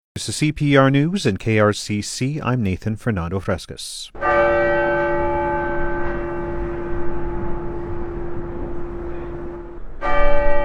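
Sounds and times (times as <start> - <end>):
speech: 0.2 - 4.3
large church bells ringing: 4.2 - 10.6.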